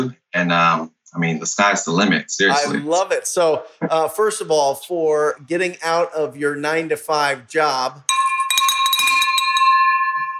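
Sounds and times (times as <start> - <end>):
speech: 0.0 - 8.3
bell ringing inside an office building: 8.1 - 10.3.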